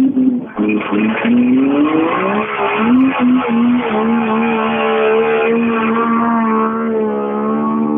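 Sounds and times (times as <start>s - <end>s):
rally car engine revving as it passes: 0.0s - 7.9s
rally car tire squeal: 0.5s - 7.9s.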